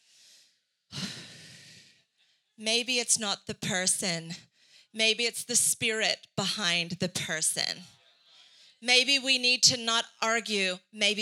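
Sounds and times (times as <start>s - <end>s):
deep breath: 0.0s - 2.5s, 8.1s - 8.8s
speech: 2.6s - 8.0s, 8.8s - 11.2s.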